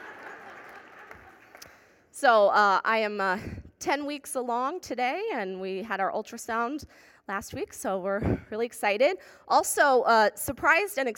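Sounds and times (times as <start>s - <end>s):
crowd of people applauding: 0.0s - 1.8s
speech: 2.2s - 11.1s.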